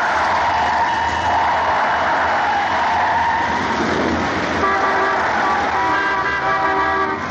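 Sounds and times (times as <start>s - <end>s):
car swerving hard: 0.0s - 7.2s
steady roaring road noise: 0.0s - 7.2s
several car horns honking at once: 4.6s - 7.2s.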